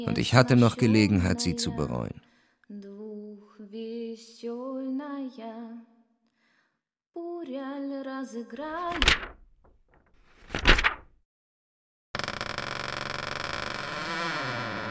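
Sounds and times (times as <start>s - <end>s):
speech: 0.0s - 2.9s, 7.4s - 9.4s
door creaking open: 8.8s - 11.1s, 12.2s - 14.9s.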